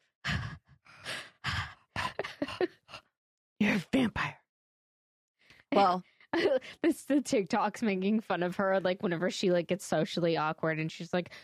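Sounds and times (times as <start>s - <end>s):
voice imitating heavy mouth breathing: 0.3s - 3.1s
speech: 3.6s - 4.3s, 5.8s - 11.4s.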